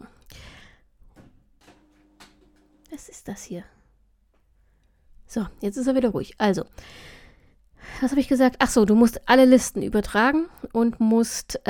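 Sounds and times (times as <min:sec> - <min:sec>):
printer whirring and clunking: 0:01.6 - 0:02.8
speech: 0:03.0 - 0:03.8, 0:05.3 - 0:07.2, 0:07.9 - 0:11.6.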